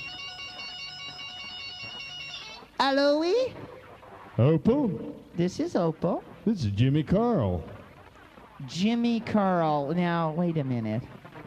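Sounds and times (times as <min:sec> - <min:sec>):
French telephone ringing with a bright buzzy electronic tone: 0:00.0 - 0:03.4
speech: 0:02.8 - 0:03.7, 0:04.4 - 0:07.8, 0:08.6 - 0:11.2.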